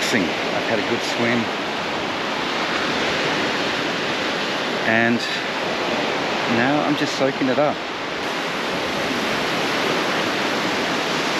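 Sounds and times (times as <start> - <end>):
waves washing onto a beach: 0.0 - 11.3
speech: 0.1 - 1.6, 4.8 - 5.5, 6.5 - 7.9.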